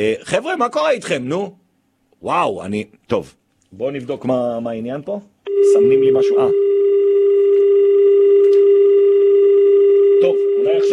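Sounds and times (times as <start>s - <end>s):
speech: 0.0s - 1.6s, 2.2s - 6.6s
telephone tone while dialing a call: 5.5s - 10.9s.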